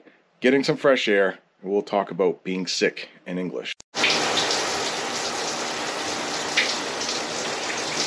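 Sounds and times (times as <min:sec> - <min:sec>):
speech: 0:00.4 - 0:03.8
shower running water: 0:04.0 - 0:08.0.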